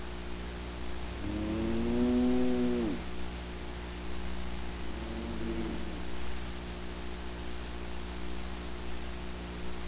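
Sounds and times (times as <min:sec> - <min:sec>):
low mechanical hum: 0:00.0 - 0:09.8
cow lowing: 0:01.2 - 0:03.0, 0:04.9 - 0:06.1.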